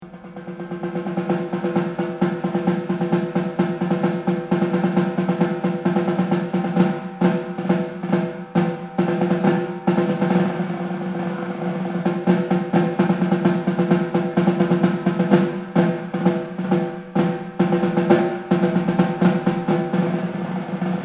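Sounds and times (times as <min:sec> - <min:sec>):
cymbals: 0:00.0 - 0:21.0
drum: 0:00.0 - 0:21.0.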